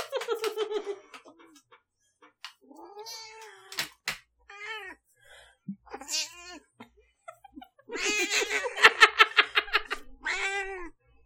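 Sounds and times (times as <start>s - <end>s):
laughter: 0.0s - 1.8s, 6.8s - 10.2s
female cat meowing and yowling after being woken: 2.6s - 3.9s, 4.5s - 5.0s, 5.9s - 6.7s, 7.9s - 8.5s, 10.1s - 11.0s.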